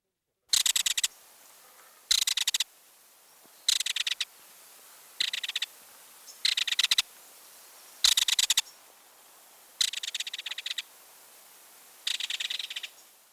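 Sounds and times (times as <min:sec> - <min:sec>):
faint steady hiss: 0:00.0 - 0:13.3
belted kingfisher giving harsh dry rattles in flight over fishing grounds: 0:00.5 - 0:01.2, 0:02.1 - 0:02.7, 0:03.7 - 0:04.3, 0:05.2 - 0:05.8, 0:06.4 - 0:07.1, 0:08.0 - 0:08.8, 0:09.8 - 0:10.9, 0:12.0 - 0:13.0.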